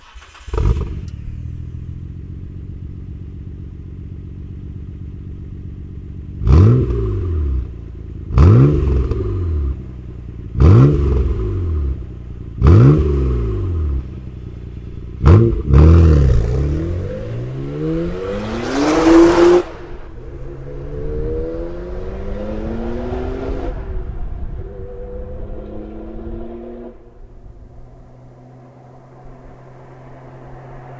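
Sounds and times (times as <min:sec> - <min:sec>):
R34 Skyline GT-R with titanium racing exhaust revving: 0:00.1 - 0:30.9.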